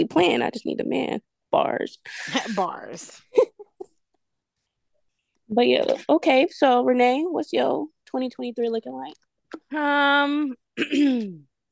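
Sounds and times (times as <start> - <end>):
speech: 0.0 - 3.5, 5.5 - 11.5
throat clearing: 10.8 - 11.5.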